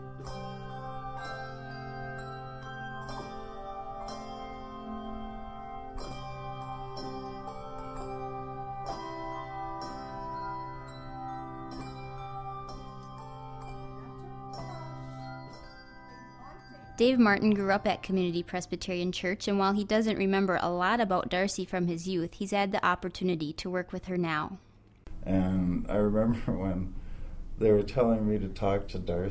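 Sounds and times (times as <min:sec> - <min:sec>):
handbell choir playing a melody: 0:00.0 - 0:18.6
speech: 0:17.0 - 0:27.0, 0:27.6 - 0:29.2.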